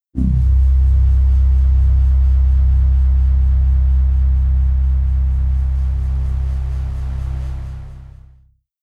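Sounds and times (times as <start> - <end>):
pulse bass without tremolo: 0.0 - 8.4.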